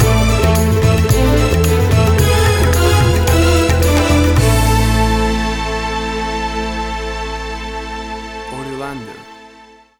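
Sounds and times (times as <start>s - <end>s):
Asian music bed stinger: 0.0s - 9.4s.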